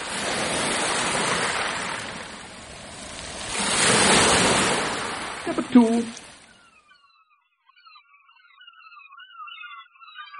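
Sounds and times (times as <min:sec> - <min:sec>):
ocean surf: 0:00.0 - 0:06.5
speech: 0:05.8 - 0:06.2.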